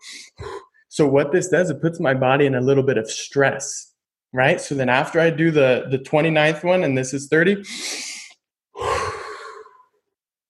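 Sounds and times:
speech: 1.0 - 8.0
forceful breathing in through nose and out through mouth during fast breathing exercise: 7.6 - 9.9.

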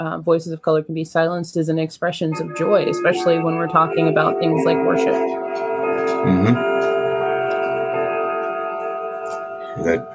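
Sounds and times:
speech: 0.0 - 5.6, 6.2 - 6.7, 9.8 - 10.1
clock chime with sustained bell tones: 2.2 - 10.1.

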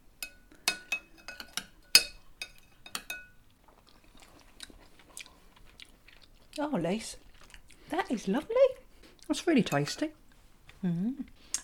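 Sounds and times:
cutlery clinking on dishes as people taste green pea soup: 0.2 - 3.4
soft chewing: 0.5 - 11.6
speech: 6.6 - 7.2, 7.9 - 8.7, 9.3 - 10.2, 10.8 - 11.4.

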